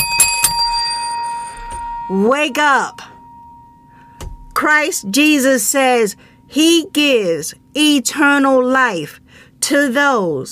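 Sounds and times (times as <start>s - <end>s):
hand bell ringing: 0.0s - 5.1s
speech: 2.1s - 3.1s, 4.6s - 10.4s.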